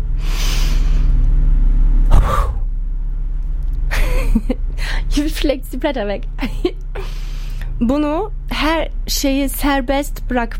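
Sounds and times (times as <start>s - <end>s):
person's deep inhale and sharp exhale in a deep-breathing exercise: 0.0s - 1.2s, 2.0s - 2.7s
steady low rumble: 1.0s - 7.0s
speech: 5.2s - 7.2s, 7.8s - 10.5s.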